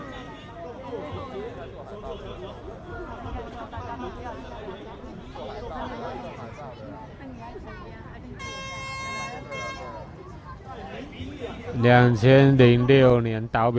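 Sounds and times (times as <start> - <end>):
crowd chatter: 0.0 - 13.7
handheld gas-powered air horn blasting: 8.4 - 10.0.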